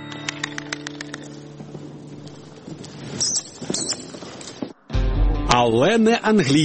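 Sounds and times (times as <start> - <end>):
horse hooves clip-clopping during training at a stud farm: 0.3 - 4.9
speech: 5.6 - 6.6.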